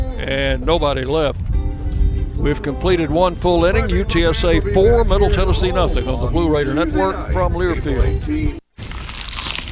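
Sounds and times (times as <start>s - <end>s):
speech: 0.2s - 1.5s, 2.4s - 8.6s
person biting into a crunchy pizza slice: 8.8s - 9.7s.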